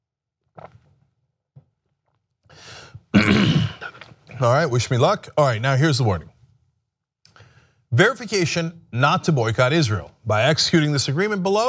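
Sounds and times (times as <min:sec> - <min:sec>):
speech: 0:02.6 - 0:06.3, 0:07.9 - 0:11.6
person coughing: 0:03.1 - 0:04.1
throat clearing: 0:03.1 - 0:04.2.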